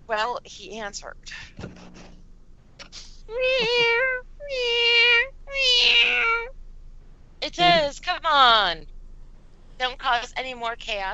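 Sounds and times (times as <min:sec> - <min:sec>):
speech: 0:00.1 - 0:02.2, 0:02.9 - 0:04.8, 0:07.4 - 0:08.9, 0:09.8 - 0:11.1
female cat meowing while being petted: 0:03.3 - 0:06.5.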